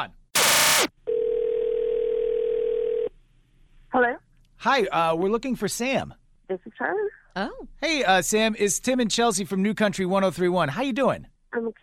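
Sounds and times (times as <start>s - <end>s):
brief bursts of sound: 0.4s - 0.9s
telephone dial tone of an outgoing phone call: 0.5s - 3.1s
speech: 4.6s - 11.8s.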